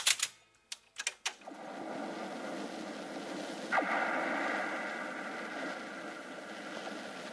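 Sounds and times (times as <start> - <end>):
sharp clicks: 0.0 - 1.5
antenna wires at a lighthouse on an island in the Barents Sea humming in wind: 1.5 - 7.3.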